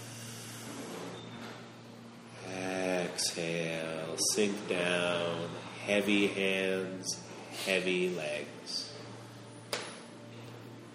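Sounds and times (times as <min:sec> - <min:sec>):
deep inhale during a yoga pose: 0:00.0 - 0:01.3
speech: 0:03.2 - 0:08.8.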